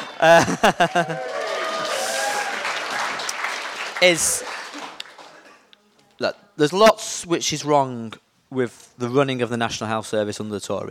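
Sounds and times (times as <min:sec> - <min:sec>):
laughter: 0:00.0 - 0:02.7
audience applauding at a political speech: 0:00.0 - 0:05.7
speech: 0:00.2 - 0:01.9, 0:04.0 - 0:04.5, 0:06.2 - 0:10.8.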